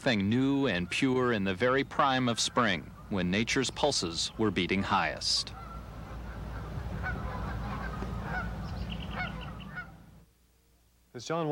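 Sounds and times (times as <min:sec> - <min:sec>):
speech: 0:00.0 - 0:05.6, 0:11.2 - 0:11.4
geese honking over a Wisconsin prairie: 0:00.7 - 0:10.3
steady low rumble: 0:02.8 - 0:10.3.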